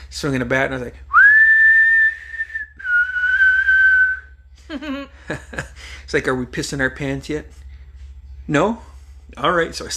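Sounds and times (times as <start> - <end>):
speech: 0.2 - 1.1, 4.7 - 7.6, 8.5 - 9.9
person whistling a menacing villain's tune: 1.1 - 4.4.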